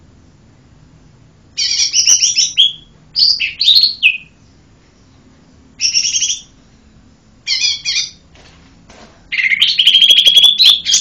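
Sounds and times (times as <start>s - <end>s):
bird twittering: 1.6s - 5.2s, 5.8s - 6.6s, 7.4s - 8.2s, 9.3s - 10.9s.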